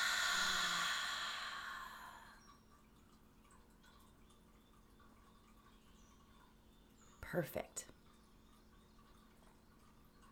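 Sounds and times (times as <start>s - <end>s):
deep breath released in a long soft exhale: 0.0s - 2.4s
speech: 7.3s - 8.0s.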